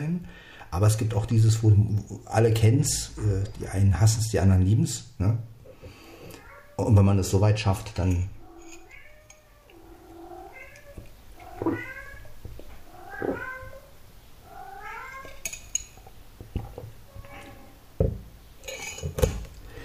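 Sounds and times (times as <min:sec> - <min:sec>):
speech: 0:00.0 - 0:05.5, 0:06.8 - 0:08.4
cat on a coat rack meowing: 0:06.3 - 0:06.9, 0:08.4 - 0:15.5.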